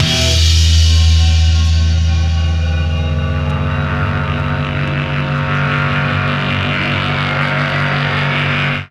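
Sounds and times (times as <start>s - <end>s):
guitar feedback: 0.0s - 8.8s.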